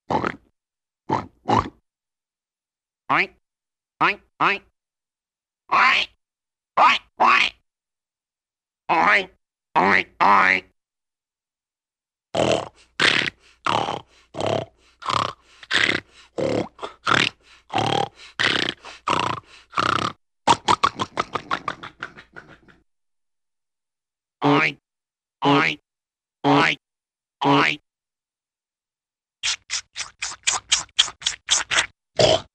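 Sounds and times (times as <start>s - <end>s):
funny cartoon pig sounds: 0.1s - 0.5s, 1.1s - 1.8s, 5.7s - 6.2s, 6.8s - 7.6s, 8.9s - 10.7s, 12.4s - 22.7s, 25.4s - 25.8s, 26.4s - 26.8s, 27.4s - 27.8s, 29.4s - 32.5s.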